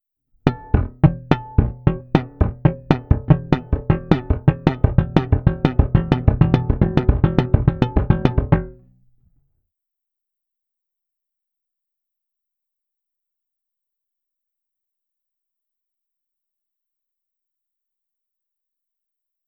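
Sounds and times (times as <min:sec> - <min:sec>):
slap bass playing triplets: 0:00.4 - 0:09.1.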